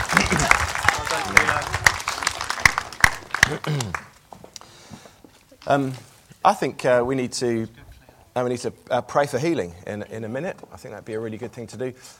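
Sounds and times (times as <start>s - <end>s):
audience clapping: 0.0s - 4.7s
speech: 3.5s - 4.1s, 5.7s - 7.8s, 8.4s - 12.1s.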